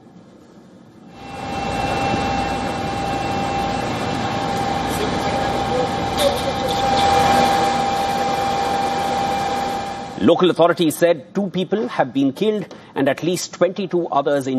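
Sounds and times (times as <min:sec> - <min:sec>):
outdoor city noise in Kyiv, Ukraine: 0:00.0 - 0:10.2
Russian attack drone engine buzzing overhead in Kyiv, Ukraine: 0:01.1 - 0:10.4
speech: 0:10.2 - 0:14.5.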